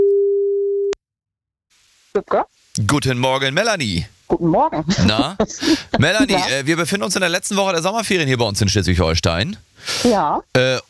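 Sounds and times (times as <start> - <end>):
steady low telephone line tone during a radio phone-in: 0.0 - 1.0
speech: 2.1 - 10.8.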